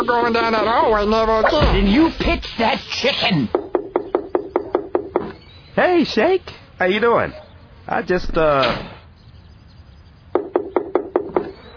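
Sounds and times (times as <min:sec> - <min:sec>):
speech: 0:00.0 - 0:03.6, 0:05.8 - 0:09.0
knocking on a door: 0:03.5 - 0:05.4, 0:10.4 - 0:11.5.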